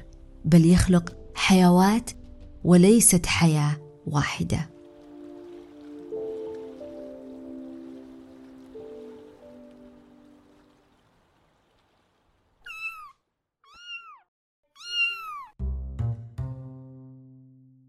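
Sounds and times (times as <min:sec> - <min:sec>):
speech: 0:00.5 - 0:04.7
soft pouring rushing sound: 0:04.7 - 0:12.9
cat meowing: 0:12.6 - 0:15.6.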